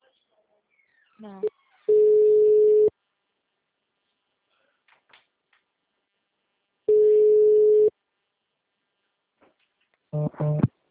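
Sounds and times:
speech: 0:01.2 - 0:01.6
phone tones after a dropped call: 0:01.9 - 0:02.9, 0:06.9 - 0:07.9.

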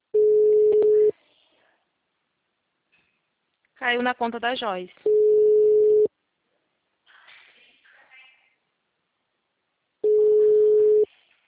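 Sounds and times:
telephone line tone while calling a client: 0:00.2 - 0:01.1, 0:05.1 - 0:06.1, 0:10.0 - 0:11.1
speech: 0:03.8 - 0:05.2.

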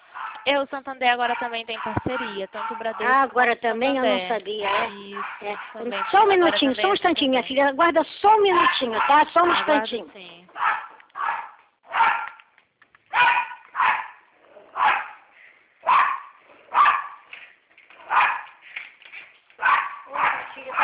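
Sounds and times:
small dog barking at the door: 0:00.1 - 0:00.5, 0:01.3 - 0:03.2, 0:04.6 - 0:06.4, 0:08.5 - 0:09.8, 0:10.5 - 0:12.4, 0:13.1 - 0:17.3, 0:18.0 - 0:18.6, 0:19.6 - 0:20.8
speech: 0:00.4 - 0:10.8.

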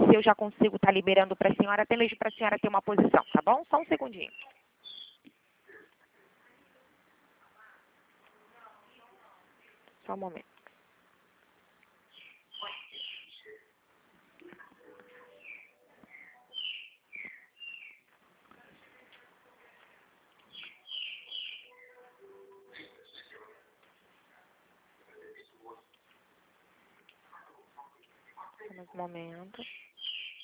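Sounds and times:
faint noise: 0:00.0 - 0:30.4
speech: 0:00.2 - 0:04.6, 0:10.1 - 0:10.5, 0:28.7 - 0:29.8
small bird singing over a phone-like line: 0:02.1 - 0:05.3, 0:12.1 - 0:13.7, 0:15.3 - 0:18.1, 0:20.4 - 0:22.0, 0:22.8 - 0:23.4, 0:29.5 - 0:30.4.

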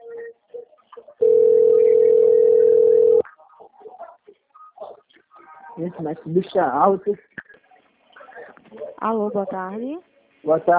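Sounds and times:
telephone dial tone after a dropped call: 0:01.2 - 0:03.2
speech: 0:05.8 - 0:07.4, 0:09.0 - 0:10.7.

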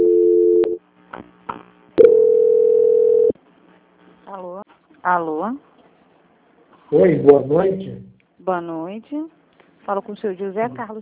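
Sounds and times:
steady telephone line tone during call transfer: 0:00.0 - 0:00.8, 0:02.0 - 0:03.4
telephone line hum during call transfer: 0:00.0 - 0:01.1, 0:02.0 - 0:03.4
speech: 0:05.0 - 0:05.7, 0:06.9 - 0:11.0.

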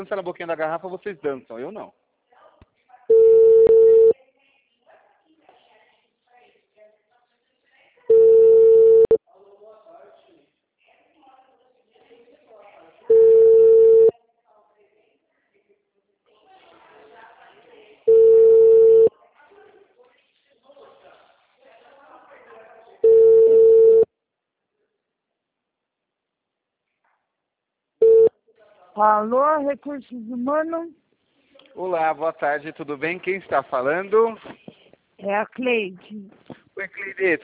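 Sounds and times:
speech: 0:00.0 - 0:02.0, 0:29.0 - 0:31.0, 0:31.8 - 0:37.4
telephone ringback tones as a call is placed: 0:03.1 - 0:04.1, 0:08.1 - 0:09.2, 0:13.1 - 0:14.1, 0:18.1 - 0:19.1, 0:23.0 - 0:24.1, 0:28.0 - 0:28.3.

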